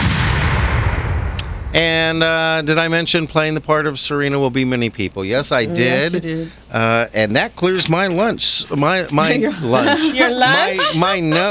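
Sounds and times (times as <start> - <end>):
loud cannon shot booming: 0.0 - 2.2
speech: 1.8 - 11.4
laughter: 5.7 - 6.3, 8.8 - 11.4.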